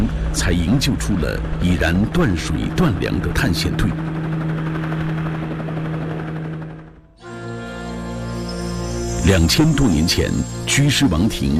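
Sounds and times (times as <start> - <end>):
helicopter rotor chopping: 0.0 - 11.5
speech: 0.4 - 4.2, 9.3 - 11.5
sustained humming tone with layered pitches: 4.0 - 11.5.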